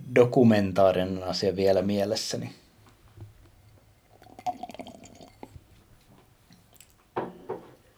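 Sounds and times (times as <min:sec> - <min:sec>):
speech: 0:00.1 - 0:02.6
small drips and clicks: 0:02.8 - 0:07.2
person slurping water: 0:04.0 - 0:05.9.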